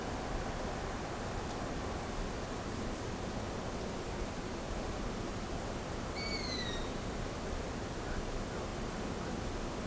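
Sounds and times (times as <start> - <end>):
continuous noisy hiss: 0.0 - 9.8
owl giving a short high whistle: 6.2 - 6.9.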